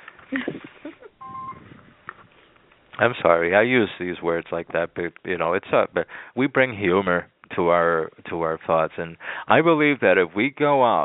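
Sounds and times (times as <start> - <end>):
speech: 0.3 - 0.6, 3.0 - 11.0
mobile phone sounding a short electronic tone: 1.2 - 2.0.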